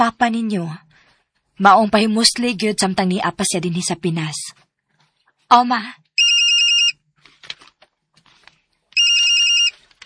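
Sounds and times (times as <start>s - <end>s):
speech: 0.0s - 0.9s, 1.6s - 4.6s, 5.5s - 6.0s
mobile phone ringtone in bright electronic bursts: 6.2s - 7.0s, 9.0s - 9.8s.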